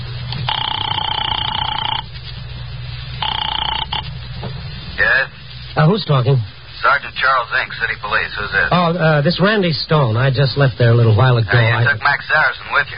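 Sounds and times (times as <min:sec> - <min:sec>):
telephone ringing tones on the line: 0:00.3 - 0:02.1, 0:03.2 - 0:04.1
speech: 0:05.8 - 0:12.9.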